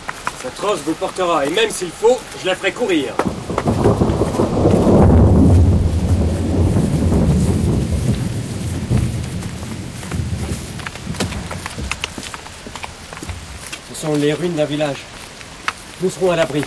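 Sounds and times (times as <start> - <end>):
steady rain pattering: 0.0 - 16.6
speech: 0.4 - 3.8, 14.1 - 15.1, 16.0 - 16.6
deep heavy roll of thunder: 3.1 - 13.6.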